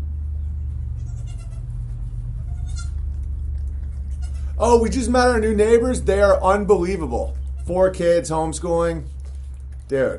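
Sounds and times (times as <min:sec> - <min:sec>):
steady low rumble: 0:00.0 - 0:10.1
young goats bleating during bottle feeding: 0:01.0 - 0:01.8, 0:02.4 - 0:03.1, 0:03.9 - 0:04.9, 0:07.3 - 0:08.0
speech: 0:04.6 - 0:09.1, 0:09.9 - 0:10.1.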